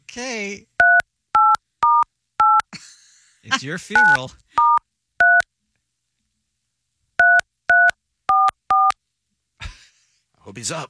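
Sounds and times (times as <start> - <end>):
speech: 0.2 - 0.7, 3.4 - 4.7, 10.5 - 10.8
touch-tone phone keys being dialed with two-pitch tones: 0.8 - 2.7, 4.0 - 5.4, 7.2 - 9.0.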